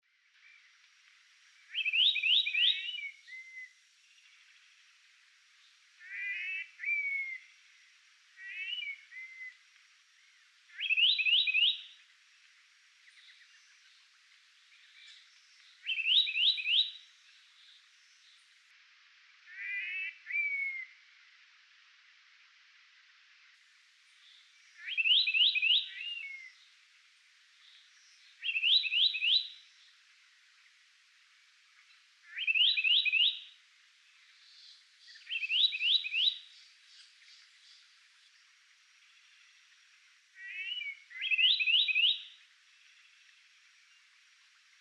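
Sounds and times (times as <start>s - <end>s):
soldadinho bird singing: 1.5s - 4.8s, 5.6s - 7.7s, 8.4s - 9.6s, 10.2s - 12.1s, 13.0s - 18.6s, 19.5s - 21.0s, 24.1s - 26.8s, 27.5s - 30.0s, 31.7s - 44.7s.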